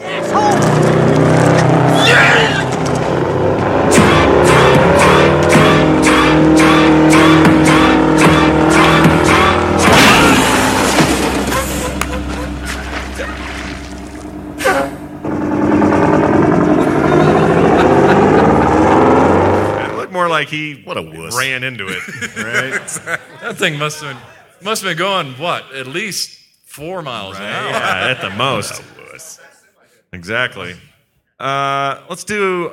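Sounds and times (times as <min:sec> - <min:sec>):
truck engine revving and roaring in a film scene: 0:00.0 - 0:20.2
laughter: 0:04.1 - 0:13.8, 0:16.6 - 0:20.0, 0:21.7 - 0:24.5, 0:27.3 - 0:29.8
speech: 0:20.5 - 0:29.3, 0:30.1 - 0:32.7.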